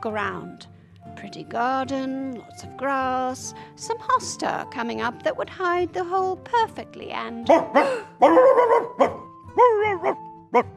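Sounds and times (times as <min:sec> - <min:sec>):
speech: 0:00.0 - 0:10.7
dogs barking loudly and yowling: 0:07.5 - 0:10.7.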